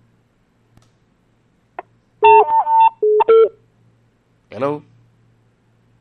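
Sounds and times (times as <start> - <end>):
telephone dialing tones as a caller connects: 2.2 - 3.5
speech: 4.6 - 4.9.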